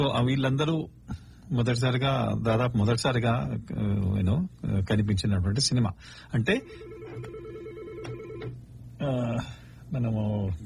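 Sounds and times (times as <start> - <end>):
speech: 0.0 - 7.3, 9.0 - 10.6
telephone ringing on a call-in line with a warbling electronic tone: 6.6 - 8.6.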